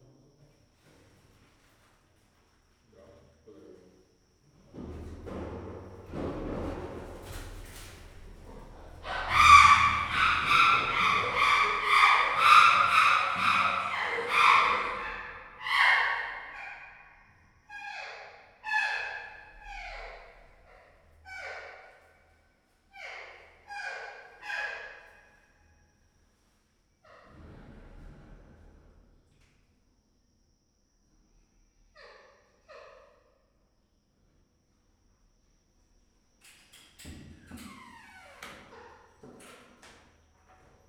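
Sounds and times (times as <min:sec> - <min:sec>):
mother chimpanzee vocalizing in a zoo: 0:09.0 - 0:16.8.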